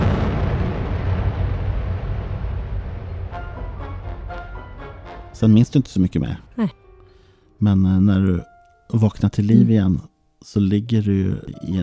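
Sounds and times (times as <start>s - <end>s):
deep rumbling explosion: 0.0s - 4.8s
speech: 5.4s - 6.8s, 7.6s - 11.8s.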